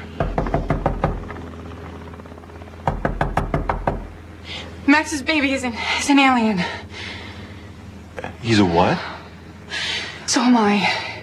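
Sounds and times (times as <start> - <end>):
low rumbling hum: 0.0 - 11.2
firm knocking on a door: 0.2 - 1.4, 2.8 - 4.1
speech: 4.9 - 6.9, 8.4 - 9.2, 10.4 - 11.0.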